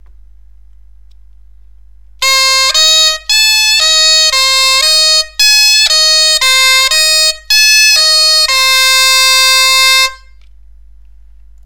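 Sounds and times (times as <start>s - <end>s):
bombarde arpeggio on C E A natural: 2.2s - 10.2s.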